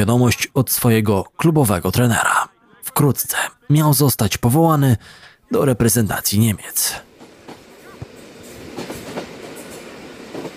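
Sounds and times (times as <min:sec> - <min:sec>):
speech: 0:00.0 - 0:02.4, 0:03.0 - 0:07.1
train rumbling on rails: 0:07.1 - 0:10.5.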